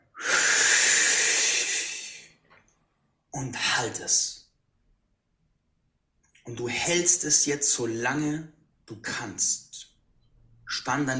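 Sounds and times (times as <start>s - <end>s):
deep inhalation during a guided breathing exercise: 0.1s - 2.4s
speech: 3.4s - 4.4s, 6.5s - 9.9s, 10.7s - 11.1s.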